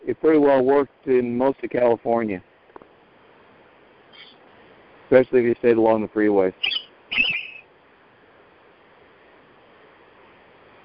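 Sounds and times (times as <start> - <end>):
speech: 0.2 - 2.5, 5.1 - 7.4
high-pitched electronic device chirp signalling a received PDF: 6.6 - 7.6.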